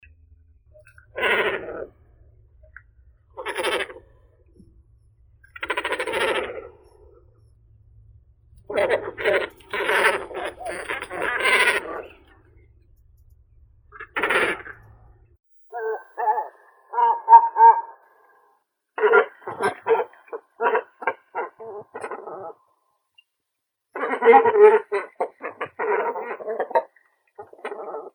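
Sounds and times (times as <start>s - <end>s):
great cormorant Phalacrocorax carbo calling: 1.2s - 2.0s, 3.4s - 4.1s, 5.5s - 7.1s, 8.7s - 12.4s, 14.0s - 14.7s, 15.8s - 22.7s, 24.0s - 28.1s.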